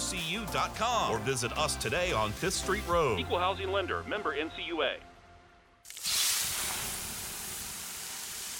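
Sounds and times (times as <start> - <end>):
speech: 0.1 - 5.1
water poured onto 800-degree sauna rocks hissing: 5.9 - 8.5
steam rushing from sauna rocks: 6.0 - 8.5.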